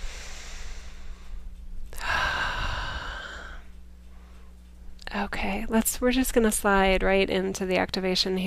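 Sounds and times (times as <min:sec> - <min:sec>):
deep breath during a guided breathing exercise: 0:00.0 - 0:04.5
low hum: 0:00.0 - 0:08.4
speech: 0:05.2 - 0:08.4.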